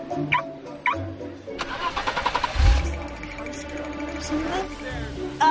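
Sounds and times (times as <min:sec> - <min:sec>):
speech: 0:00.2 - 0:00.4, 0:04.3 - 0:04.8
Buick LaCrosse car engine starting by remote start and idling: 0:01.6 - 0:05.4.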